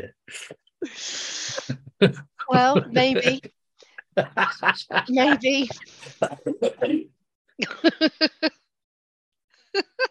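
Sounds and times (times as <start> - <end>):
speech: 0.0 - 1.2, 2.0 - 3.6, 4.2 - 8.6
person coughing in a rough hacking fit: 1.5 - 3.4, 5.3 - 7.1
laughter: 1.5 - 7.0, 7.6 - 8.5.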